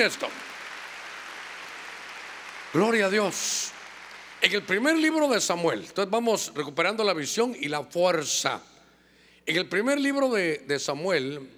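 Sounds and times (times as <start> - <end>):
speech: 0.0 - 0.5, 2.7 - 3.8, 4.4 - 8.7, 9.4 - 11.5
audience clapping loudly: 0.0 - 5.5.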